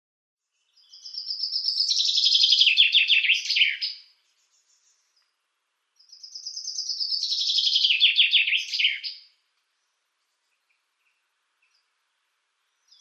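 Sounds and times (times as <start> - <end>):
common chaffinch song with a downward trill and final flourish: 0.6 - 5.2, 6.0 - 9.3, 12.7 - 12.9.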